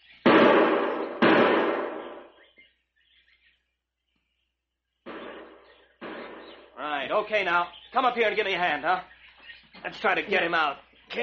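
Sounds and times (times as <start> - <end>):
gunshots fired as a signal: 0.2 - 2.4, 5.1 - 6.8
speech: 6.8 - 9.1, 9.8 - 11.2.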